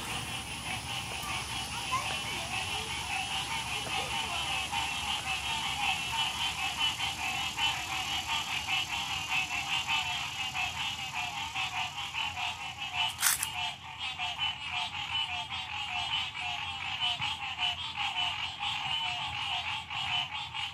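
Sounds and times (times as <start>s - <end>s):
chorus of frogs croaking and trilling at dusk in a small pond: 0.0s - 20.7s
brief sharp click: 13.1s - 13.6s.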